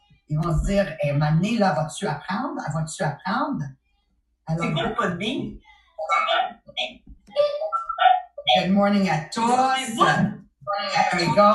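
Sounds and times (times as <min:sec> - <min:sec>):
speech: 0:00.3 - 0:03.8, 0:04.5 - 0:07.6, 0:08.5 - 0:11.5
dog barking and yelping over a call microphone: 0:07.7 - 0:08.5.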